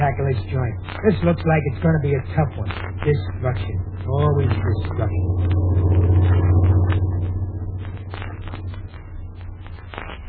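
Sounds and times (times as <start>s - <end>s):
speech: 0.0s - 6.4s
heavy truck engine rumbling while driving: 2.6s - 10.0s.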